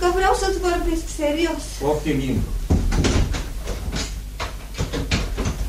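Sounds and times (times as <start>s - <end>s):
speech: 0.1s - 2.6s
door pushed shut and bolted: 2.7s - 5.6s.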